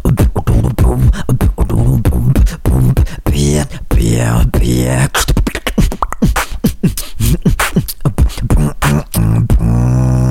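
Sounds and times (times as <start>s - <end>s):
beatboxed buzzing trilled thrill bass tone: 0.0s - 10.3s.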